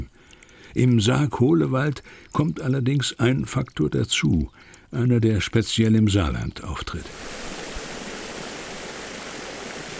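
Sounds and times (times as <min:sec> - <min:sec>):
speech: 0:00.7 - 0:07.4
pumped mine water pouring through open channels at water gardens in Reden Saarland Germany: 0:07.0 - 0:09.9.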